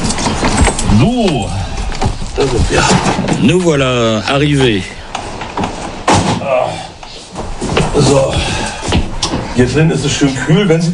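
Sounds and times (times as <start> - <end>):
voices talking indoors: 0.0 - 10.9
speech: 1.0 - 1.6, 2.4 - 5.0, 8.0 - 8.5, 9.6 - 10.9
house door on the Hallig Oland in Germany shutting with a solid thud: 5.6 - 6.6.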